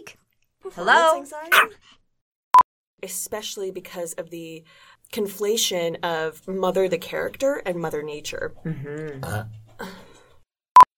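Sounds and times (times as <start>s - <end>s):
speech: 0.1s - 2.0s, 3.0s - 10.0s
person burping after drinking nog: 8.6s - 9.8s.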